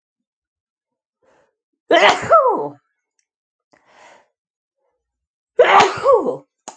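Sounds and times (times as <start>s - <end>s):
faint breath: 1.2s - 1.6s, 3.8s - 4.4s
loud sneezes: 1.9s - 2.6s, 5.6s - 6.4s.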